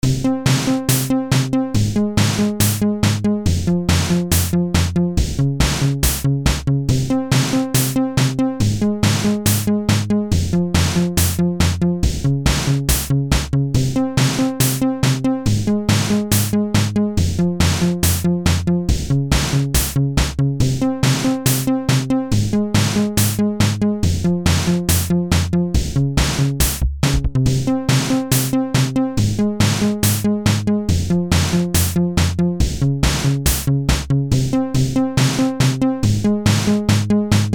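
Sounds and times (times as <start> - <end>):
downwards techno: 0.0 - 37.5.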